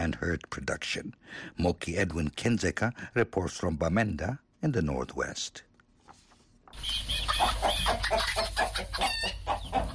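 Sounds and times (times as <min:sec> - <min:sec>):
speech: 0:00.0 - 0:05.7, 0:06.7 - 0:09.9
chickens clucking and squawking on a poultry farm in Cameroon: 0:06.7 - 0:09.9.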